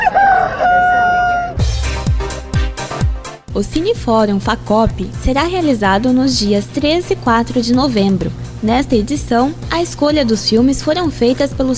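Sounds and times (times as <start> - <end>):
rooster crowing: 0.0 - 1.6
punchy thumping music hits: 1.6 - 3.6
speech: 3.6 - 11.7.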